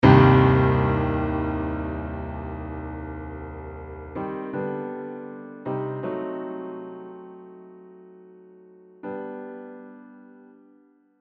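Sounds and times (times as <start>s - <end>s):
loud chord hit with high velocity: 0.0s - 4.3s
soft tapering musical phrase: 0.0s - 5.2s.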